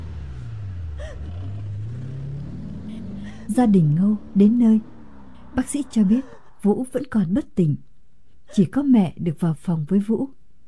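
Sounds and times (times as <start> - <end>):
car engine speeding off at night: 0.0 - 7.5
speech: 3.5 - 4.9, 5.6 - 7.9, 8.5 - 10.4.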